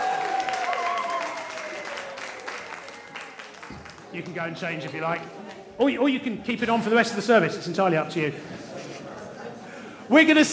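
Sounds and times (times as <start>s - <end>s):
crowd applauding at a church service: 0.0s - 5.3s
faint murmur of voices: 1.4s - 10.5s
speech: 4.1s - 8.6s, 10.1s - 10.5s.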